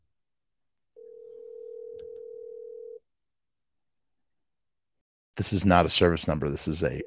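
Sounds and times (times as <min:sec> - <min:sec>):
steady ringback tone on phone line during outgoing call: 0:01.0 - 0:03.0
speech: 0:05.4 - 0:07.0.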